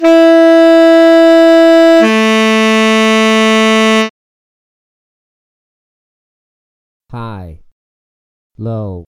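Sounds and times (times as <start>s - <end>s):
tenor sax playing high and low notes E3 and A2: 0.0s - 4.1s.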